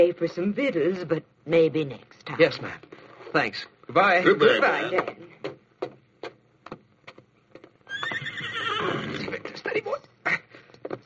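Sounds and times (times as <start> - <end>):
speech: 0.0 - 5.5
ridden horse at a ranch entrance giving a long quavering whinny: 7.8 - 9.4.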